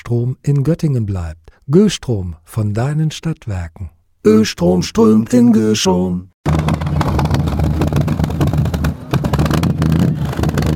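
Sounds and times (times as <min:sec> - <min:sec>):
speech: 0:00.1 - 0:07.6
vintage vehicle engine running at a classic vehicle gathering in Duderstadt, Germany: 0:06.5 - 0:10.7.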